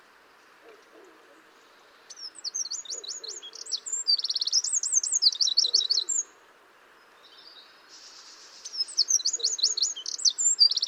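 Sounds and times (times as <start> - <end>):
Eurasian wren Troglodytes troglodytes singing: 2.0 - 6.3, 7.2 - 10.8.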